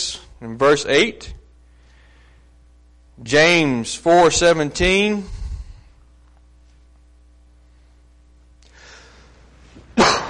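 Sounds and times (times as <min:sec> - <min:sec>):
low steady room hum: 0:00.0 - 0:10.2
speech: 0:00.4 - 0:01.4, 0:03.2 - 0:05.4
breathy intake of air: 0:05.2 - 0:06.0, 0:08.7 - 0:09.5
sharp loud cough: 0:10.0 - 0:10.2.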